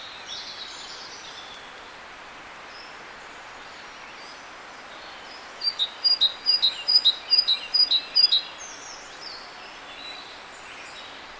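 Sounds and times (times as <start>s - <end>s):
faint background hiss: 0.0s - 11.3s
great tit Parus major singing two-note phrases: 5.6s - 8.4s.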